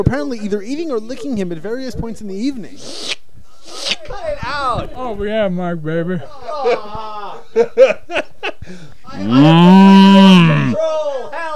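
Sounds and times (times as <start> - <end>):
speech: 0.0 - 3.2, 4.1 - 9.8
laughter: 6.2 - 10.8
person imitating a cow mooing: 9.2 - 10.8.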